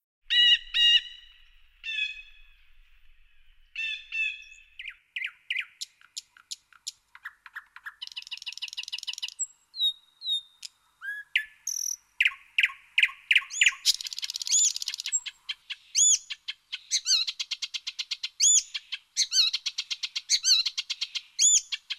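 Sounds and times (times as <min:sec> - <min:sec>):
several birds singing in an open natural setting: 0:00.3 - 0:21.9.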